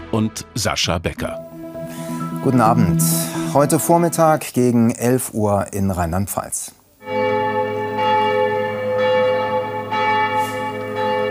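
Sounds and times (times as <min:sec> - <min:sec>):
speech: 0:00.1 - 0:06.8
large church bells pealing: 0:01.4 - 0:05.0, 0:07.0 - 0:11.2.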